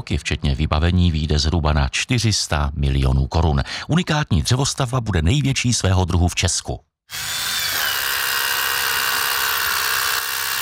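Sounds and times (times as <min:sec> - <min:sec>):
speech: 0:00.0 - 0:07.4
power drill whining at construction site: 0:07.1 - 0:10.5.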